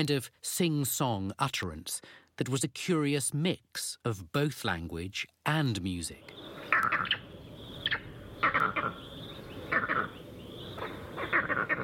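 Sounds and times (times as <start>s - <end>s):
speech: 0.0s - 7.2s
vervet monkey alarm calls in Kenya: 6.3s - 11.8s.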